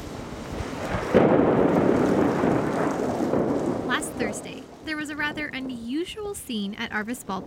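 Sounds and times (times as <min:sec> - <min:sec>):
loud thunder clap at a baseball ballpark in Springdale: 0:00.0 - 0:06.4
steady rain falling at a baseball ballpark in Springdale: 0:00.0 - 0:07.4
speech: 0:05.3 - 0:07.4.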